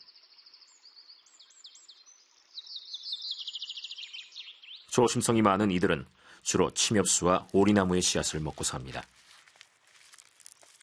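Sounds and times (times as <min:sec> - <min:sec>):
Eurasian siskin and crossbill calls: 0:00.0 - 0:04.9
speech: 0:05.0 - 0:09.3.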